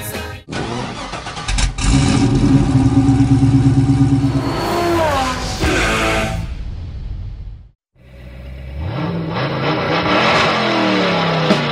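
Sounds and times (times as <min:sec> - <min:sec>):
Chevrolet 409 V8 car engine revving: 0:00.5 - 0:06.2, 0:08.1 - 0:11.7.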